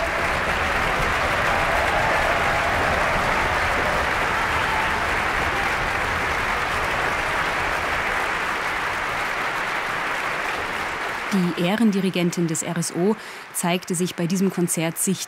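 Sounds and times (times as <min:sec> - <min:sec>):
loud sustained applause from a large audience in a concert hall: 0:00.0 - 0:15.2
speech: 0:11.3 - 0:15.2.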